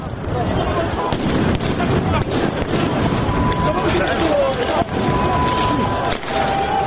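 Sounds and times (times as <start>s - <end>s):
constant roar of wind: 0.0s - 6.8s
explosions: 0.0s - 6.8s
faint steady siren tone: 3.2s - 4.2s, 4.8s - 6.8s.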